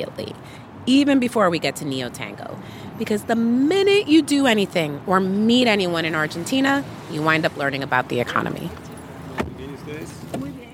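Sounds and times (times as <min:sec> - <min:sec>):
speech: 0:00.0 - 0:08.8, 0:09.9 - 0:10.6
car door shutting thumps: 0:09.3 - 0:10.6.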